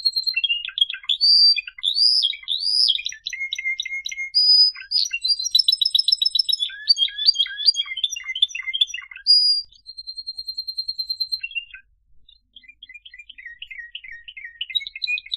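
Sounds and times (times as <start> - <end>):
Canary song: 0.0 - 15.3.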